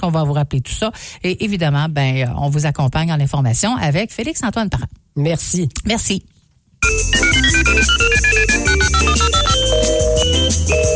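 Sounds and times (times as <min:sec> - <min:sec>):
speech: 0:00.0 - 0:10.9
telephone ringing with a bright melodic electronic ringtone: 0:06.8 - 0:10.9.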